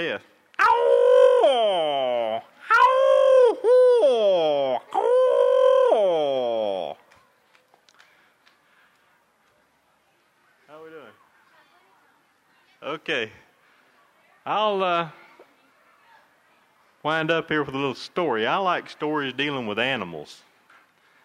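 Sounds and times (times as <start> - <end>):
speech: 0.0 - 0.4, 13.0 - 13.4, 14.4 - 15.2, 17.0 - 20.5
voice imitating screech owl calls: 0.6 - 6.9.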